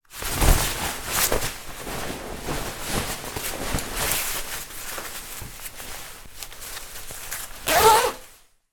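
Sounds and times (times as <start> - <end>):
raincoat being put on: 0.0 - 8.7
raincoat zipper zipping up: 7.6 - 8.3.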